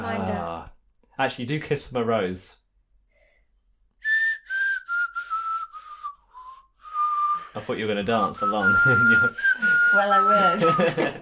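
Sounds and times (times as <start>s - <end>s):
speech: 1.2s - 2.6s, 7.6s - 11.2s
slow melody in a breathy hissing whistle through the teeth: 4.0s - 7.6s, 8.2s - 11.0s
laughter: 7.6s - 11.2s.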